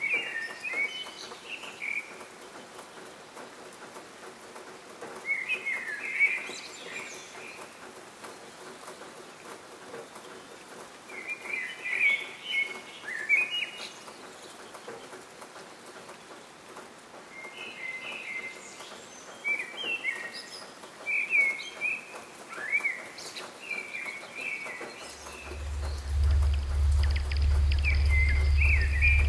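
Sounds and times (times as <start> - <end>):
birds singing in a dawn chorus: 0.0 - 3.3, 5.2 - 16.3, 17.3 - 29.2
low rumble: 25.2 - 29.2.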